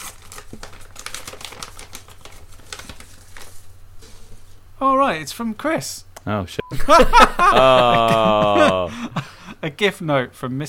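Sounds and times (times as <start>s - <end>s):
paper envelope being opened: 0.0s - 3.8s
speech: 4.8s - 10.6s
laughter: 6.7s - 9.5s.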